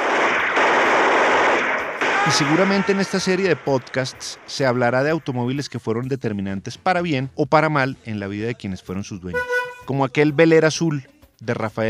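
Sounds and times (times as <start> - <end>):
rapid gunfire: 0.0 - 4.1
speech: 2.3 - 11.8.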